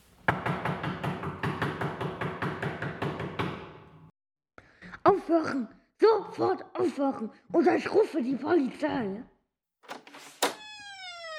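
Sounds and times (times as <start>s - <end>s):
building caretaker pounding on an apartment door: 0.3s - 3.8s
speech: 5.0s - 9.3s.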